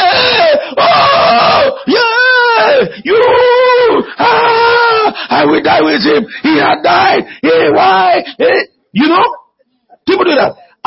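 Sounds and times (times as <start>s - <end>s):
preacher imitating wailing with drawn-out vocal cries: 0.0s - 5.2s
speech: 5.4s - 9.4s, 10.1s - 10.8s.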